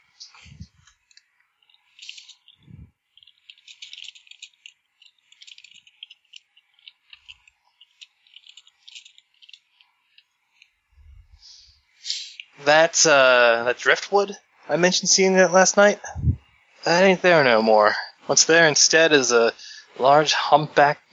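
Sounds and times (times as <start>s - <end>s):
ten dice rattling and clattering across a hard surface: 3.2s - 9.6s
speech: 12.7s - 16.1s, 16.8s - 21.1s.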